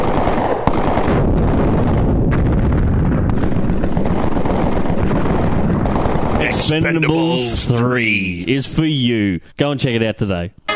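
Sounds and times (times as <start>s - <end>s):
gunfire from an action film trailer: 0.0s - 7.8s
explosions from an action film trailer: 0.0s - 8.4s
speech: 6.7s - 10.6s.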